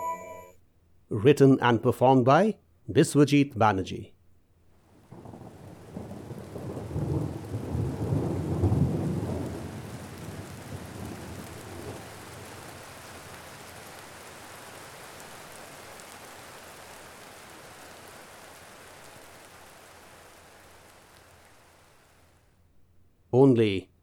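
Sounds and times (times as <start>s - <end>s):
speech: 1.2s - 4.2s, 23.4s - 23.9s
deep rolling thunderclap: 5.2s - 9.4s.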